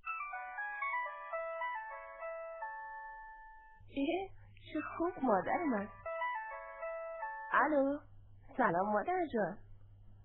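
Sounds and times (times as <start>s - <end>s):
looping chime-like ringback tune during an outgoing phone call: 0.0s - 3.8s, 4.7s - 7.8s
speech: 4.0s - 6.0s, 7.5s - 9.6s.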